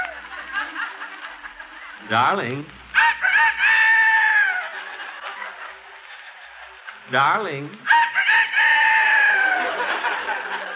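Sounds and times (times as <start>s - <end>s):
laughter: 0.0s - 2.4s, 3.1s - 7.3s, 8.4s - 10.7s
speech: 2.1s - 2.8s, 7.1s - 8.0s
rooster crowing: 3.0s - 4.8s, 7.9s - 10.0s.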